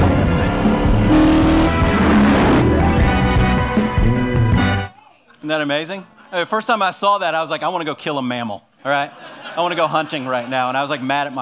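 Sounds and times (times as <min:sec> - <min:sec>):
Charger muscle car V8 engine revving: 0:00.0 - 0:03.9
speech: 0:05.5 - 0:11.4
laughter: 0:08.9 - 0:11.4.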